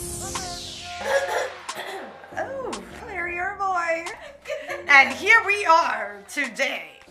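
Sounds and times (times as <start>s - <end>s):
person grunting: 0.9s - 2.5s
person clearing throat: 1.0s - 2.2s
laughter: 4.1s - 5.2s
speech: 5.0s - 6.9s.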